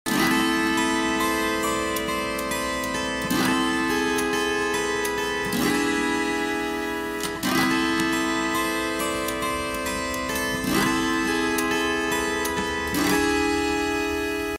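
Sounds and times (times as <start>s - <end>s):
harp guitar: 0.1s - 14.5s.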